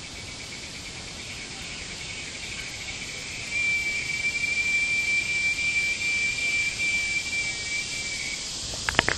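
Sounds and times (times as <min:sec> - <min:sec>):
cicada drone in Brazos County: 0:00.0 - 0:09.1
sharp clicks: 0:08.8 - 0:09.1.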